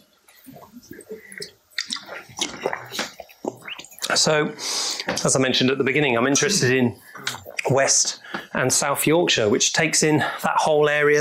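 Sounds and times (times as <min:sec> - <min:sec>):
person sipping a drink: 0:00.3 - 0:04.2
person swallowing: 0:00.5 - 0:04.2, 0:07.2 - 0:07.7
speech: 0:04.2 - 0:07.1, 0:07.7 - 0:11.1.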